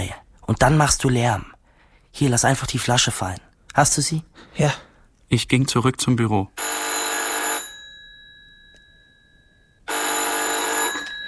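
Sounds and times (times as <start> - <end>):
speech: 0.0 - 1.5, 2.1 - 6.8
telephone ringing outside the room with a shrill electric bell: 6.6 - 11.2.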